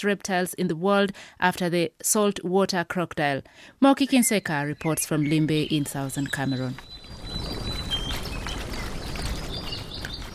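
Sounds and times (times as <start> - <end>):
speech: 0.0 - 7.6
outdoor noise: 0.0 - 10.3
birds singing at sunset in the Limbe Botanic Garden in Cameroon: 4.0 - 10.3.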